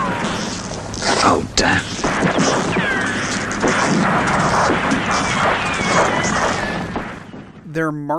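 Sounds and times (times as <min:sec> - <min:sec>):
explosions rumbling and crashing in a World War I battle barrage: 0:00.0 - 0:07.8
whistling tones sliding overhead: 0:04.5 - 0:07.6
speech: 0:07.8 - 0:08.1.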